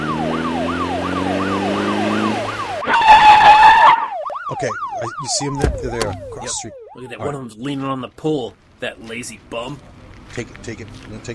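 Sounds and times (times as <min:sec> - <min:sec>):
police car siren wailing: 0:00.0 - 0:07.7
speech: 0:04.6 - 0:11.3.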